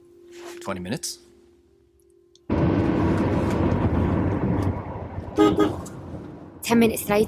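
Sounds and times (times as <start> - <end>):
speech: 0.6 - 1.3, 5.4 - 5.8, 6.7 - 7.2
low hum: 1.7 - 7.2
car speeding along a highway toward the Boston waterfront: 2.5 - 6.6
car horn blast: 5.4 - 6.1.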